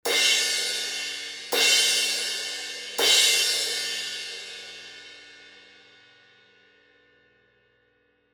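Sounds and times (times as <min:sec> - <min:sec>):
thin crash cymbal hits: 0:00.1 - 0:05.4.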